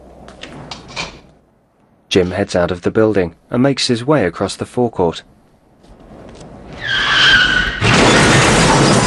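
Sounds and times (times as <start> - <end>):
speech: 2.1 - 5.3
pickup truck tire squeal: 6.7 - 9.0
pickup truck crashing through a flimsy garage door: 6.8 - 9.0.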